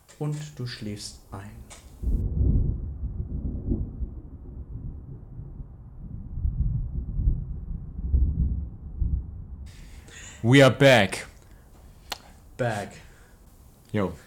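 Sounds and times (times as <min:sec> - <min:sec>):
speech: 0:00.2 - 0:02.2, 0:10.4 - 0:11.3, 0:12.6 - 0:13.0, 0:13.9 - 0:14.2
low rumbling of a light thunderstorm: 0:01.0 - 0:10.1.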